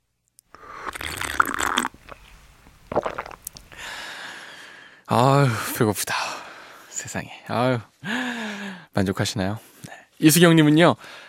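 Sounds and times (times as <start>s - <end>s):
gulping swallow: 0.7s - 2.2s, 2.9s - 3.4s
speech: 5.1s - 6.4s, 7.0s - 8.2s, 9.0s - 11.2s.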